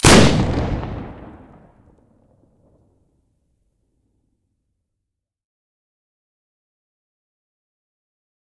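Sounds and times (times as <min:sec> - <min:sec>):
AA-12 automatic shotgun muzzle blast: 0:00.0 - 0:01.8.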